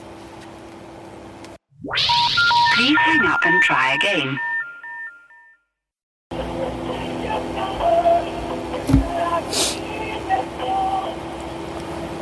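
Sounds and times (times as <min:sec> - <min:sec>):
tinny electronic telephone hold-music melody of stepped beeping tones: 0:02.0 - 0:05.4, 0:06.3 - 0:11.4
speech: 0:02.9 - 0:04.5.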